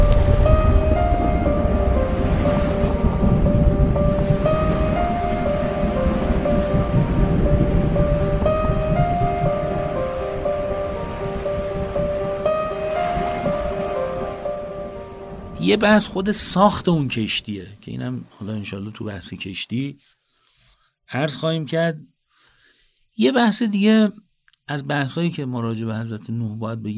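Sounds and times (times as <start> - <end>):
sustained droning musical tones: 0.0 - 16.3
heavy rushing floodwaters roaring: 0.0 - 17.5
speech: 15.7 - 20.2, 21.1 - 22.1, 23.2 - 26.9.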